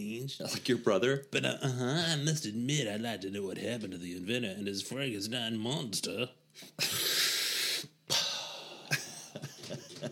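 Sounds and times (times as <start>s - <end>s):
speech: 0.0s - 7.0s
voice imitating a long sharp inhale of a marijuana toke: 6.6s - 8.9s
laughter: 8.9s - 10.1s.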